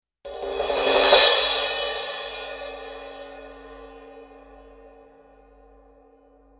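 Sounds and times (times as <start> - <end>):
Sabian 16-inch AA rock crash cymbal: 0.3 - 5.3.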